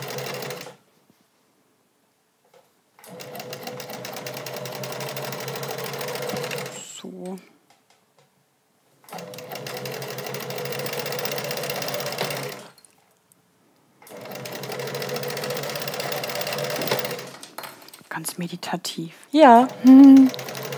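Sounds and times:
small sewing machine that needs oiling clattering while stitching: 3.0 - 6.8, 9.1 - 12.8, 14.1 - 17.8, 19.5 - 20.7
speech: 7.3 - 7.6, 18.4 - 20.4.

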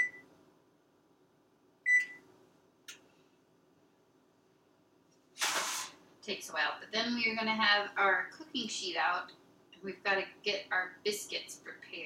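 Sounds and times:
electric oven control panel beeping as temperature is set: 1.9 - 2.2
loud broadband hiss-like burst: 5.4 - 6.0
speech: 6.3 - 12.0.

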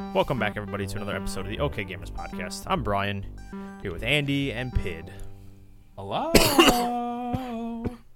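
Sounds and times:
speech: 0.2 - 5.3, 6.0 - 8.0
short sharp coughs: 6.3 - 8.1.

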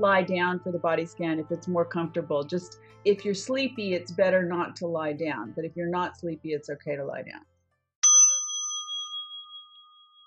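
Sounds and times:
speech: 0.0 - 7.5
meditation bell ringing with bright metallic tone: 8.0 - 10.2.

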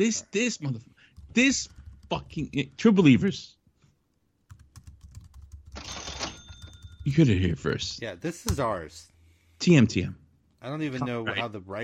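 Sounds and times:
speech: 0.0 - 3.6, 7.1 - 11.8
soft typing on a computer keyboard: 1.2 - 2.3, 4.5 - 7.1.

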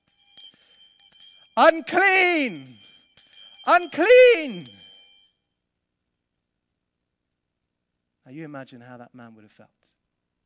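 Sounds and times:
small hand bell ringing: 0.0 - 5.6
speech: 1.6 - 2.7, 3.7 - 4.8, 8.3 - 9.8.

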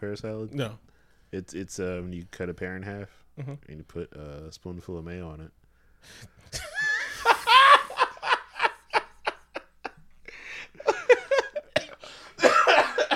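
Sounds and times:
speech: 0.0 - 6.7
person laughing in bursts breaking into coughs: 6.6 - 13.1.

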